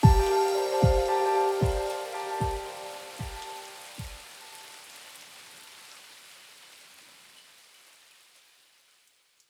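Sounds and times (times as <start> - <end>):
piano pads: 0.0 - 4.8.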